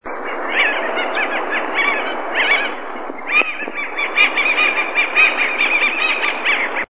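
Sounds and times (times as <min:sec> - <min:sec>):
taguató hawk calling: 0:00.2 - 0:06.9.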